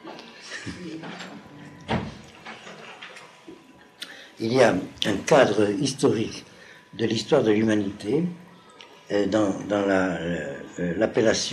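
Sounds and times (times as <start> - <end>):
faint indistinct voices: 0.0 - 11.5
speech: 0.6 - 2.1, 4.4 - 8.4, 9.1 - 11.5
door swinging shut with a muffled thud: 1.8 - 2.2.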